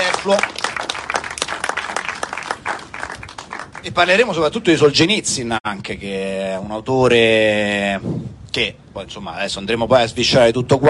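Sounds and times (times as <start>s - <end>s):
audience applauding: 0.0s - 4.2s
speech: 0.2s - 0.6s, 3.8s - 10.8s.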